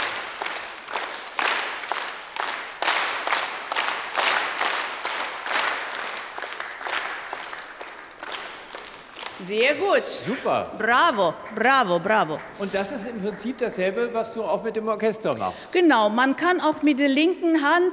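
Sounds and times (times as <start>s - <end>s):
group clapping in a steady triple-meter rhythm: 0.0s - 9.8s, 10.4s - 14.4s
speech: 9.5s - 17.9s.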